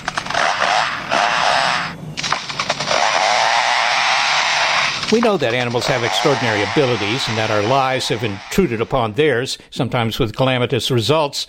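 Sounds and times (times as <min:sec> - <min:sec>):
lyrebird in its forest home mimicking lumberjacks' chainsaws: 0:00.3 - 0:02.0, 0:02.9 - 0:05.1, 0:05.7 - 0:08.8
speech: 0:05.1 - 0:11.4.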